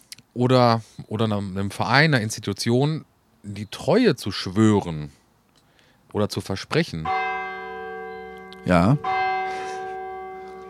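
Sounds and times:
speech: 0.4 - 5.2, 6.1 - 7.2, 8.6 - 9.2
church bells ringing for the Angelus: 6.8 - 10.6.

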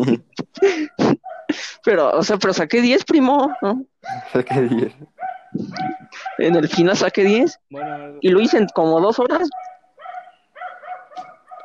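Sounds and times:
speech: 0.0 - 1.0, 1.8 - 9.7
laughter: 0.0 - 1.8, 4.1 - 5.0
small dog barking in high-pitched yaps: 1.2 - 1.5, 3.4 - 6.9, 7.8 - 8.8, 9.5 - 11.6.

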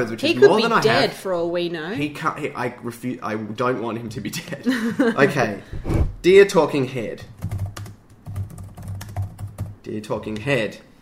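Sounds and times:
speech: 0.0 - 7.4, 9.9 - 10.9
quick uneven typing on a computer keyboard: 7.4 - 9.8.

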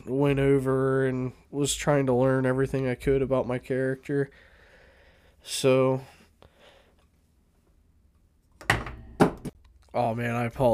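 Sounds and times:
speech: 0.1 - 4.5, 5.4 - 6.2, 10.0 - 10.7
objects knocked over onto a surface with solid thunks: 8.6 - 9.6.

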